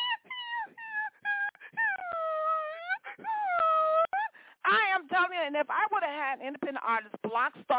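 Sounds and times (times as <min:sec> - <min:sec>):
puppy whining: 0:00.0 - 0:04.3
speech: 0:05.2 - 0:07.7.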